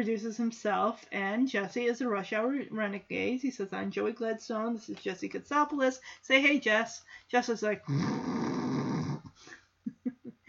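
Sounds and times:
speech: 0.0 - 8.6
voice imitating a man snoring: 7.9 - 9.4.

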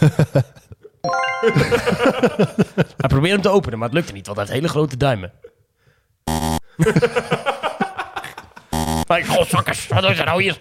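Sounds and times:
speech: 0.0 - 0.6, 1.4 - 5.5, 6.2 - 7.6, 9.1 - 10.5
bright electronic phone message chime: 1.1 - 2.3
laughter: 6.8 - 8.6.

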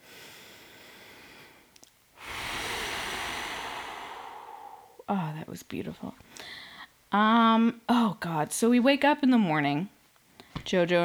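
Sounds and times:
deep inhaled breath: 0.0 - 5.0
speech: 5.1 - 10.0, 10.6 - 11.0.

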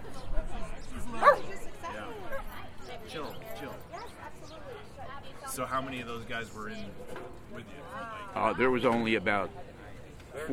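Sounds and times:
low murmur of voices: 0.0 - 10.5
dog barking: 1.2 - 1.5
speech: 5.6 - 9.7, 10.4 - 10.5.

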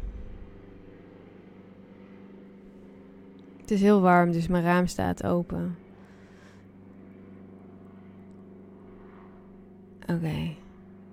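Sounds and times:
helicopter passing overhead heard through an open window: 0.0 - 11.1
speech: 3.7 - 5.8, 10.1 - 10.6.

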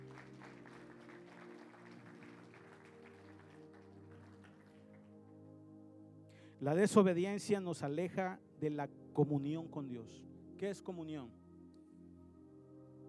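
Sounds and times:
audience applauding: 0.0 - 5.2
speech: 6.6 - 11.4.

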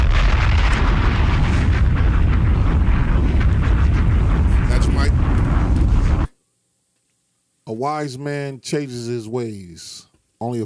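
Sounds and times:
bomb explosion sound effect: 0.0 - 6.4
speech: 7.8 - 10.6.

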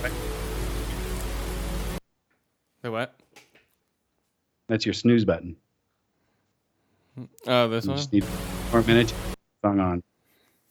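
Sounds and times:
steady hissing rain sleep sounds: 0.0 - 2.0, 8.0 - 9.4
speech: 2.8 - 3.5, 4.7 - 5.6, 7.2 - 10.1.

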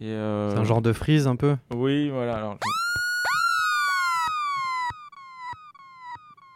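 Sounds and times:
speech: 0.0 - 2.8
synthetic dub siren tone through a choppy delay: 2.6 - 6.5.

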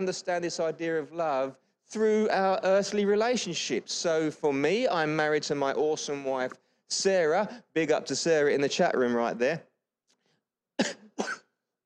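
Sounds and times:
speech: 0.0 - 9.7, 10.8 - 11.4
harsh coughs: 10.8 - 11.6.

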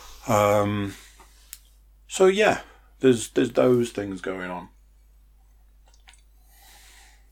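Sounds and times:
speech: 0.2 - 1.0, 2.1 - 4.8
wet mouth clicks: 5.8 - 6.3.

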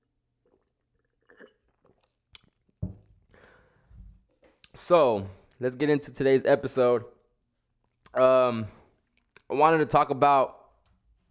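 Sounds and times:
wet gulps and swallows: 0.0 - 4.8
person sipping green juice: 0.4 - 2.6
speech: 4.8 - 7.2, 8.2 - 8.8, 9.5 - 10.6.

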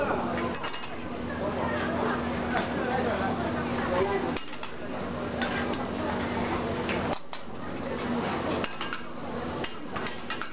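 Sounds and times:
voices chattering at a busy outdoor market: 0.0 - 10.1
stove humming at an outdoor market stall: 0.0 - 10.5
metal pots, ladles and utensils clinking and scraping at a market stall: 0.4 - 1.1, 4.3 - 4.8, 8.6 - 10.5.

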